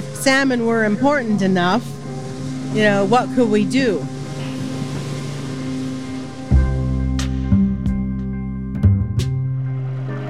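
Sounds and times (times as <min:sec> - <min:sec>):
water splashing: 0:00.0 - 0:07.4
small boat engines droning on a river approaching Sacramento: 0:00.0 - 0:10.2
speech: 0:00.2 - 0:02.0, 0:02.7 - 0:04.2.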